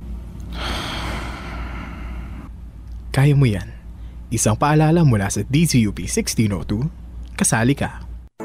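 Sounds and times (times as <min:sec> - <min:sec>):
low hum: 0:00.0 - 0:04.3
person inhaling sharply: 0:00.5 - 0:02.5
speech: 0:03.2 - 0:08.0.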